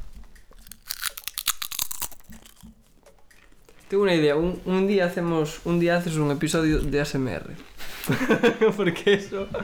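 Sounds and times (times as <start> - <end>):
person eating crunchy potato chips: 0.0 - 4.0
faint chewing: 0.0 - 8.4
speech: 3.9 - 9.6
laughter: 7.8 - 9.6.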